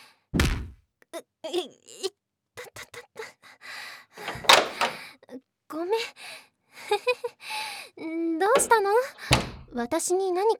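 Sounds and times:
speech: 1.4s - 2.1s, 5.3s - 6.3s, 6.9s - 7.4s, 8.0s - 10.5s
door being opened: 4.2s - 5.0s, 8.5s - 9.8s.

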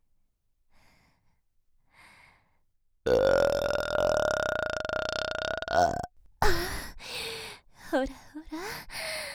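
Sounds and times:
long loud drawn-out burp: 3.1s - 6.1s
speech: 8.0s - 8.9s.

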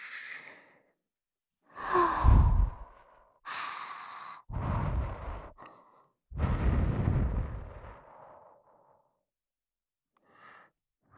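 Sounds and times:
soft breathy puffs of air blown into the listener's ear: 1.8s - 2.9s, 6.4s - 8.0s.

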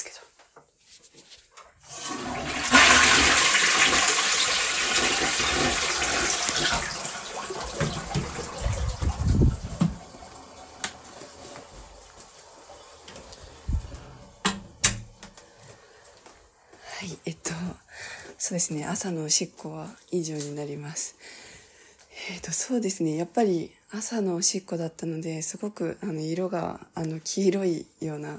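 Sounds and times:
toilet flushing: 1.8s - 14.9s
water gurgling and trickling as the toilet tank refills: 4.4s - 10.8s
speech: 18.5s - 21.4s, 22.3s - 28.3s.

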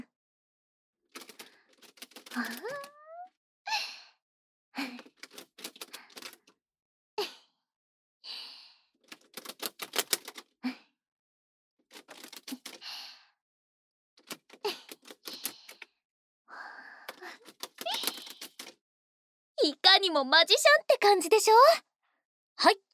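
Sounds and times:
playing cards sprung from one hand to the other: 1.2s - 2.9s, 5.1s - 6.4s, 9.1s - 10.4s, 12.0s - 12.8s, 17.4s - 18.7s
speech: 2.4s - 2.9s, 20.1s - 21.9s, 22.6s - 22.8s.

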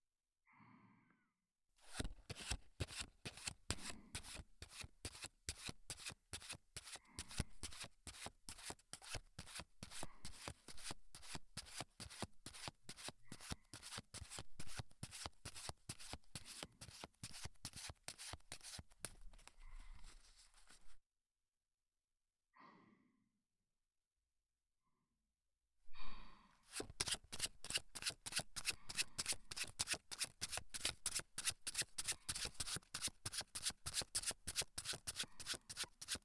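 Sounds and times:
playing cards fanned close to the right ear: 1.9s - 21.0s, 26.7s - 36.2s
soft breathy sounds: 25.9s - 26.7s.

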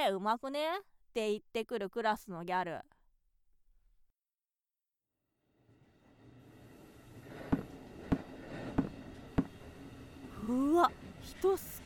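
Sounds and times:
speech: 0.0s - 3.0s, 10.5s - 11.8s
steady low rumble of a train interior: 5.8s - 11.8s
train wheels clacking over rail joints: 7.5s - 11.8s.

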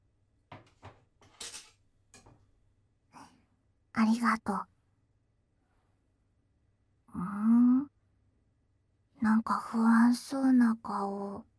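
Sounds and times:
knife and cutting board set down on a counter, clacking and knocking: 0.5s - 2.3s
speech: 4.0s - 4.7s, 9.2s - 11.5s.

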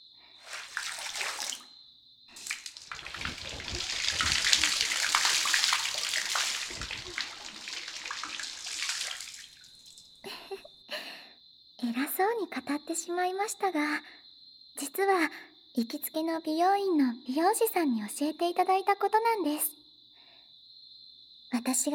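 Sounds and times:
warm water running over hair during a rinse: 0.4s - 1.7s, 2.4s - 10.5s
speech: 12.3s - 14.2s, 14.9s - 19.8s, 21.6s - 21.9s.

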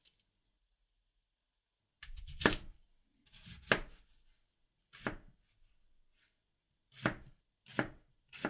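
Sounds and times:
knife chopping daikon radish on a cutting board for miso soup: 2.0s - 2.7s, 3.4s - 4.0s, 5.0s - 5.3s, 7.0s - 8.4s.

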